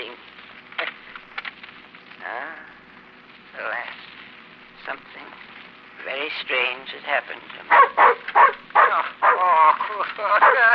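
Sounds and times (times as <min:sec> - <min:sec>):
speech: 0:06.4 - 0:07.9, 0:10.0 - 0:10.7
dog barking and yelping with whiny howling: 0:07.7 - 0:09.6, 0:10.3 - 0:10.7.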